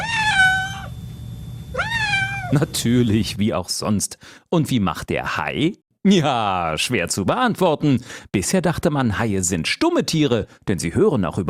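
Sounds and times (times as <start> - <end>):
cat meowing: 0.0 - 1.0, 1.7 - 2.6
faint low hum: 0.0 - 4.0
speech: 2.5 - 11.4.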